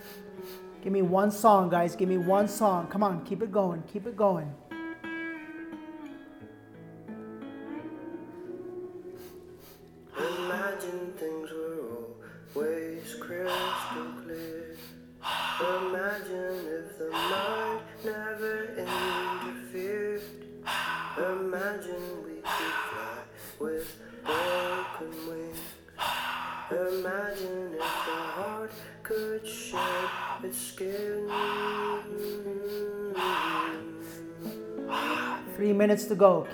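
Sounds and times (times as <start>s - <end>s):
heavy forceful breaths during a breathwork exercise: 0.0s - 0.8s, 8.4s - 35.7s
speech: 0.8s - 4.6s, 35.8s - 36.5s
musical backing with sustained tones: 4.6s - 36.5s.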